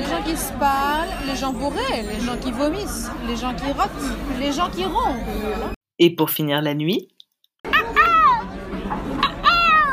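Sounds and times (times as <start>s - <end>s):
speech: 0.3s - 7.1s
seagull waking up and crying: 9.2s - 9.9s.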